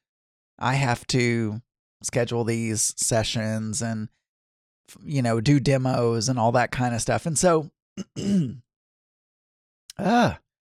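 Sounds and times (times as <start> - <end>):
speech: 0.6 - 4.2, 4.9 - 8.6, 10.0 - 10.4
throat clearing with phlegm in the throat: 8.0 - 8.6.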